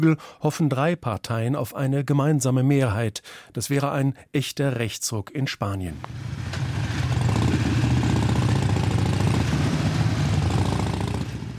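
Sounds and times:
speech: 0.0 - 6.7
group of motorcycle engines rumbling at steady speed: 6.0 - 11.5.

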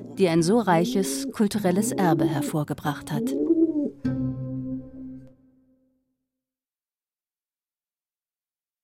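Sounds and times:
pigeon cooing: 0.0 - 4.0
speech: 0.2 - 3.5.

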